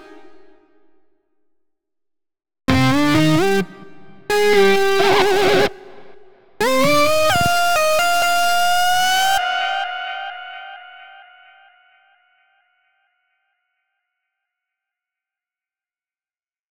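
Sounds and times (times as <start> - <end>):
guitar: 2.7 - 11.2.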